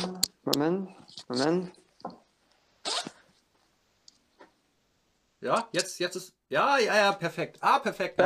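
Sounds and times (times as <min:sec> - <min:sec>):
speech: 0:00.4 - 0:02.2, 0:05.4 - 0:08.2
clothing zipper knocking and scraping against a microphone: 0:02.8 - 0:03.2.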